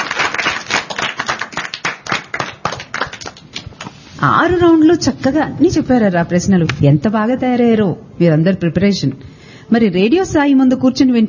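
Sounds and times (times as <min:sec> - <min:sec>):
children clapping at a quiz event: 0:00.0 - 0:03.9
speech: 0:04.2 - 0:11.2.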